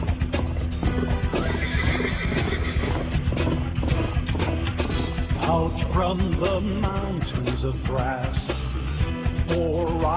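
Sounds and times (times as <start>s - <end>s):
clatter of horse hooves: 0.0s - 5.5s
horse neighing: 0.8s - 4.2s
speech: 6.0s - 8.5s, 9.5s - 10.1s.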